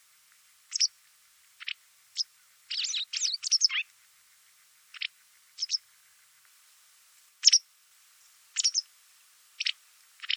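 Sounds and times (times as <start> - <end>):
white wagtail calling with short high double chirps: 0.7 - 0.9, 1.6 - 3.8, 5.0 - 5.8, 7.4 - 7.6, 8.6 - 8.9, 9.6 - 10.3.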